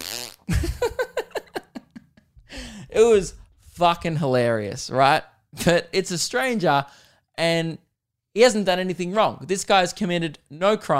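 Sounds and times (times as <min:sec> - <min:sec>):
person imitating a fart with a blown raspberry: 0:00.0 - 0:00.6
speech: 0:03.0 - 0:07.8, 0:08.4 - 0:10.9.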